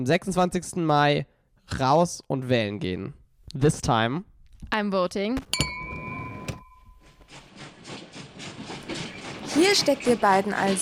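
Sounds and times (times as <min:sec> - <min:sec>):
speech: 0:00.0 - 0:05.7, 0:09.6 - 0:10.8
train clank: 0:05.6 - 0:10.8
train rumbling on rails: 0:07.3 - 0:10.8.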